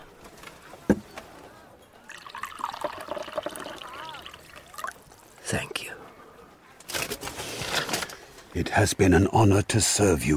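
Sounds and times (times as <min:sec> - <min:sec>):
liquid pouring into a cup: 0:02.1 - 0:05.3
speech: 0:05.5 - 0:06.0, 0:08.5 - 0:10.3.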